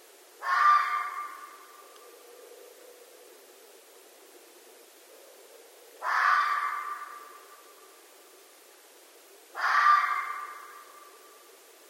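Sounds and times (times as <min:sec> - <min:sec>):
red fox screaming at night: 0:00.4 - 0:01.6, 0:06.0 - 0:07.3, 0:09.6 - 0:10.9.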